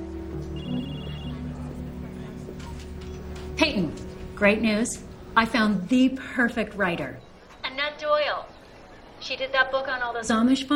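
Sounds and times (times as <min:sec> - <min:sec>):
office telephone ringing with a brief high electronic tone: 0:00.6 - 0:01.5
speech: 0:03.6 - 0:07.3, 0:09.3 - 0:10.7.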